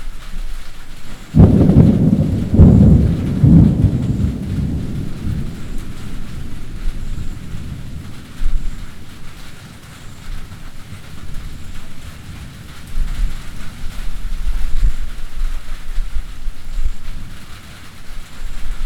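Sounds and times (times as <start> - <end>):
steady rain in a summer thunderstorm on a farmstead: 0.0 - 18.8
deep rolling rumble of thunder: 1.1 - 18.8
sharp crack of thunder in a summer thunderstorm: 1.3 - 16.1.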